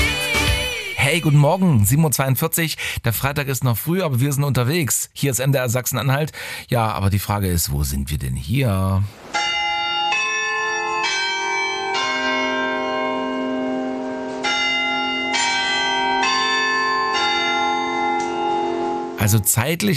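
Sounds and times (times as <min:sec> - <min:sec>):
speech: 0:01.1 - 0:09.5, 0:19.2 - 0:19.9
church tower bells ringing a chime at the market square in Halle: 0:09.3 - 0:19.5.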